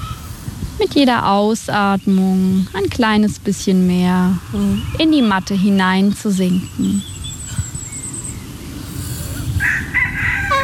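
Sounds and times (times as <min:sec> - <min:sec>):
steady low rumble of outdoor noise: 0:00.0 - 0:10.6
speech: 0:00.8 - 0:07.1
rooster crowing during a yoga session with chickens: 0:09.6 - 0:10.6.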